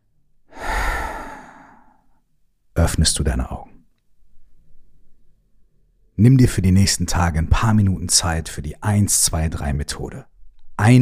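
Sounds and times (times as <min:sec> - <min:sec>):
long breathy exhale during a guided relaxation exercise: 0:00.5 - 0:02.0
speech: 0:02.8 - 0:03.7, 0:06.2 - 0:11.0.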